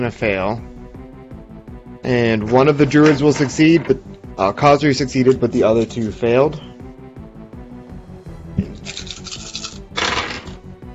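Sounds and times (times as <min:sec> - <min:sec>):
speech: 0:00.0 - 0:00.7, 0:02.0 - 0:06.7
handful of dice rattling in a cupped hand: 0:08.8 - 0:10.6.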